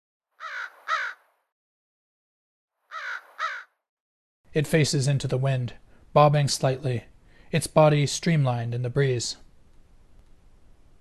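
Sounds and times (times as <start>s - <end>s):
American crow cawing: 0.4s - 1.3s, 2.9s - 3.8s
speech: 4.5s - 9.4s.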